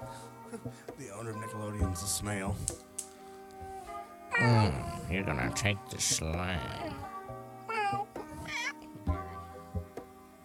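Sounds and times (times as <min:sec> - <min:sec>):
speech: 0:00.5 - 0:02.9, 0:04.4 - 0:07.2
person imitating a cat's meow: 0:04.3 - 0:05.0, 0:07.7 - 0:08.8.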